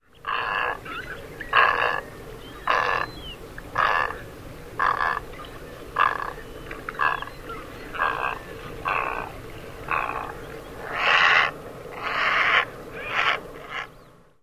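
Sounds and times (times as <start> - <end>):
Great Egret croaking: 1.5 - 3.1, 3.7 - 4.2, 4.8 - 14.0.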